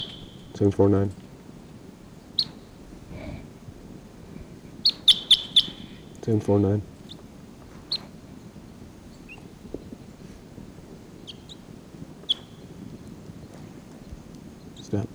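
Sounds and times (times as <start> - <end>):
short high wild bird chirps: 0.0 - 0.7, 2.3 - 2.7, 4.8 - 6.2, 12.2 - 13.0
speech: 0.6 - 1.2, 6.3 - 6.9.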